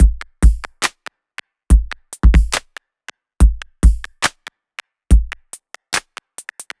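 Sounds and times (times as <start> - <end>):
dubstep slip break drum loop at 141 BPM: 0.0 - 0.9, 1.7 - 2.7, 3.4 - 4.4, 5.1 - 6.7.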